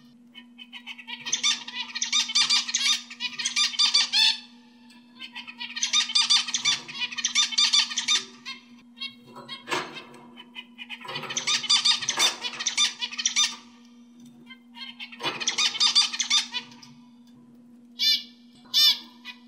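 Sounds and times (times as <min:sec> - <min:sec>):
oriental magpie-robin warbling and giving ringing notes: 0:00.0 - 0:17.2, 0:18.0 - 0:19.4.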